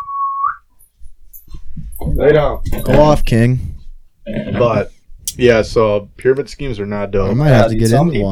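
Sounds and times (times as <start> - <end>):
short thin little whistle: 0.0 - 0.7
speech: 2.2 - 3.7, 4.3 - 8.3.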